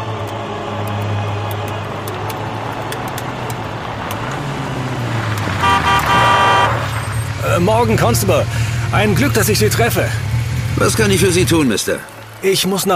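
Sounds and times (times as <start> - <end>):
car driving with low steady engine hum: 0.0 - 12.9
car horn tooting: 5.6 - 7.0
speech: 7.7 - 12.9.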